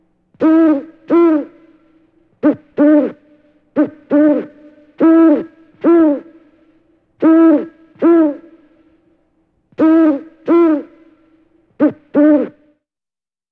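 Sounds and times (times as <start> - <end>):
faint steady hum: 0.0 - 12.8
owl hooting: 0.4 - 1.8, 2.4 - 6.6, 7.2 - 8.7, 9.8 - 11.2, 11.8 - 12.8.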